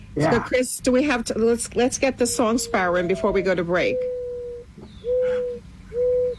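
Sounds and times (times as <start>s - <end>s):
speech: 0.2s - 4.2s
mourning dove cooing: 1.8s - 6.3s.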